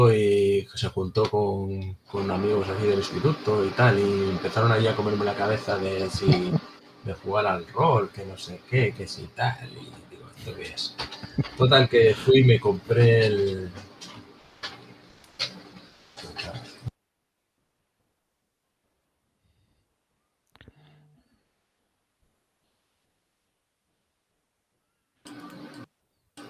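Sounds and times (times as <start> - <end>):
speech: 0.0 - 13.9
printer running: 2.1 - 16.9, 25.3 - 26.4
laughter: 5.9 - 6.6, 10.4 - 12.5.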